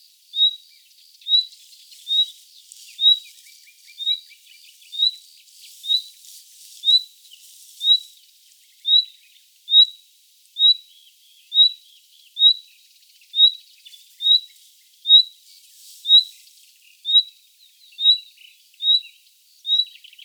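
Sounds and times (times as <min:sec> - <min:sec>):
nightingale call, Luscinia megarhynchos: 0:00.0 - 0:10.0, 0:10.6 - 0:20.2.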